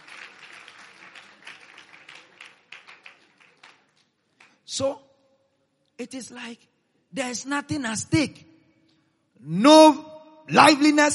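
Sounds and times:
crowd applauding: 0.0s - 4.7s
speech: 4.7s - 5.1s, 6.0s - 8.5s, 9.4s - 11.1s.

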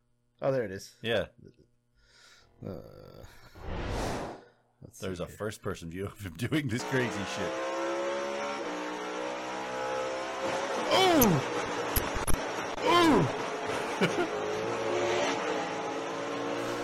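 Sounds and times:
speech: 0.4s - 1.7s, 2.6s - 4.2s, 4.8s - 7.8s
race car engines roaring during a race: 6.8s - 16.8s.

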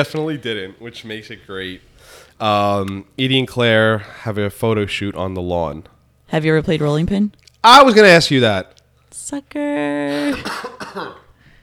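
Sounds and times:
speech: 0.0s - 11.2s
raspy coughs: 10.2s - 11.4s.

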